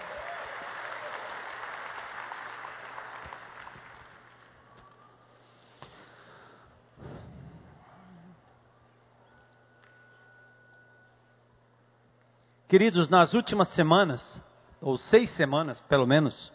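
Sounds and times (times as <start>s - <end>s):
church audience applauding after a prayer: 0.0s - 5.0s
speech: 12.7s - 16.5s.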